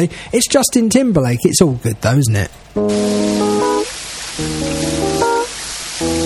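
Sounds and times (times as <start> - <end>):
speech: 0.0 - 3.7, 4.4 - 5.0
steady rain falling: 2.8 - 6.2.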